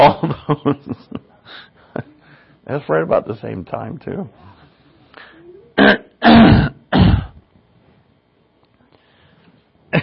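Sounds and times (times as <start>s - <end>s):
speech: 0.0s - 4.6s
person clearing throat: 5.8s - 7.4s.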